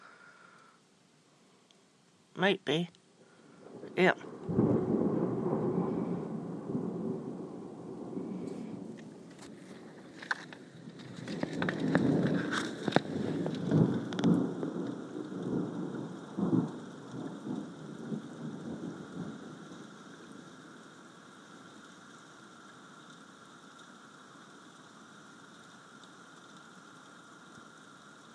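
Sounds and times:
sharper crackles and drips: 0.0 - 28.3
steady rain pattering on a surface: 0.0 - 28.3
speech: 2.4 - 3.0, 4.0 - 4.6
low thunder rumbling and rolling: 3.5 - 21.4.

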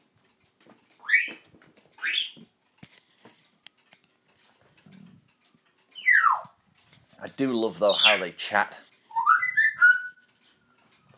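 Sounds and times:
female bird singing a loud whistled phrase on a cage: 6.0 - 6.5, 7.9 - 8.2, 9.1 - 10.2
speech: 7.4 - 8.9.

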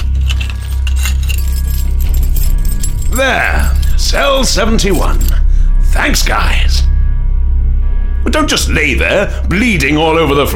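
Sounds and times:
keys jangling and clinking: 0.0 - 5.4
low steady rumble: 0.0 - 10.5
speech: 3.2 - 5.4, 6.0 - 6.8, 8.3 - 10.5.

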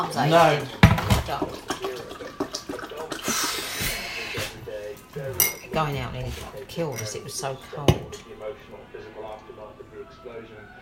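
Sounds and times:
speech: 0.0 - 1.7, 5.2 - 10.8
water pouring from a kettle into a small cup: 0.0 - 4.1
faint voices murmuring: 1.4 - 10.8.

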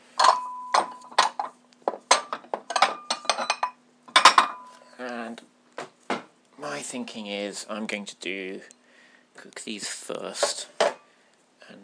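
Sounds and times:
plate clinking and rattling as it is handled in a kitchen: 0.2 - 4.7
speech: 6.8 - 8.8, 9.4 - 10.8.

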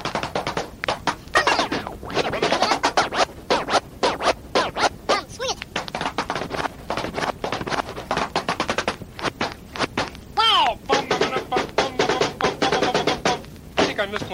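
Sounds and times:
rhythmic knocking on a door: 0.0 - 4.9, 5.7 - 14.1.

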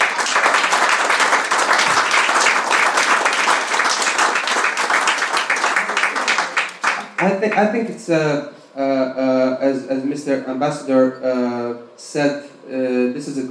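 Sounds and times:
audience applause at a Croatian literature event at the London Book Fair: 0.0 - 7.7
speech: 7.2 - 13.4.

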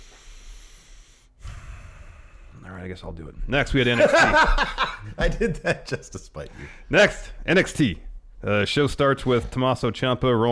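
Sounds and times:
deep breath: 0.0 - 2.7, 6.5 - 6.9
speech: 2.7 - 10.5
laughter: 3.8 - 6.6.

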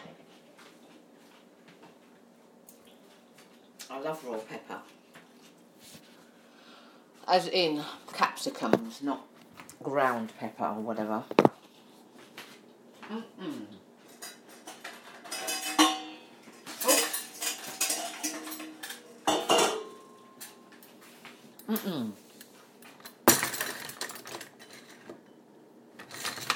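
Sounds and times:
speech: 4.1 - 5.0, 7.3 - 9.3, 9.8 - 11.5
metal cutlery clinking as utensils are dropped into a drawer: 14.1 - 20.7, 22.9 - 25.1, 26.0 - 26.5.

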